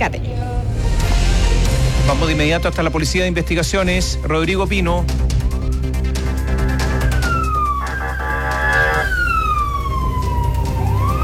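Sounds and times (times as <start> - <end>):
speech: 0.0 - 0.5, 2.1 - 5.4
police vehicle engine and road noise: 0.0 - 11.2
police vehicle siren wailing at high speed: 4.8 - 11.2.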